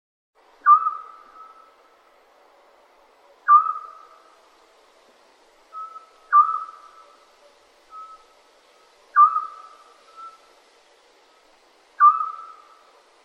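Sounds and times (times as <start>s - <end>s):
scops owl giving short whistled notes: 0.6s - 1.8s, 3.4s - 4.3s, 5.7s - 7.2s, 7.9s - 10.5s, 12.0s - 12.9s.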